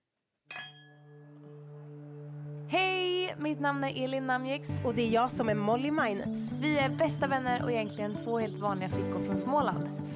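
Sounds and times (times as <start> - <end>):
wine bottle and bottle clinking together in a toast: 0.5 - 0.9
speech: 2.7 - 10.1.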